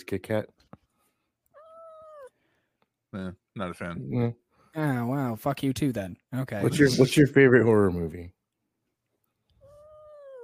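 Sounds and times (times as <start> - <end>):
speech: 0.0 - 0.6, 3.1 - 8.4
cat meowing: 1.5 - 2.4, 9.6 - 10.4.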